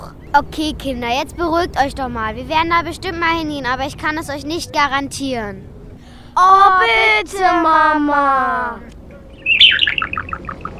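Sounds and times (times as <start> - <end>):
speech: 0.4 - 5.7, 6.4 - 8.9
budgerigar chirping on a ship: 9.2 - 10.7.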